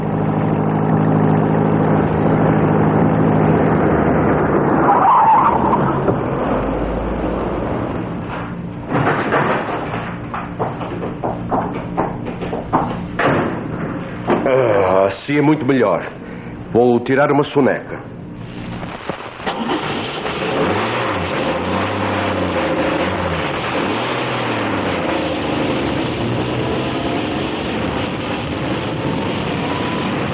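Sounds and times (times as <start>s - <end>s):
car brakes squealing: 0.0s - 9.1s, 9.9s - 30.3s
car engine humming and idling: 0.0s - 30.3s
clunks: 7.3s - 14.6s
speech: 15.4s - 18.2s.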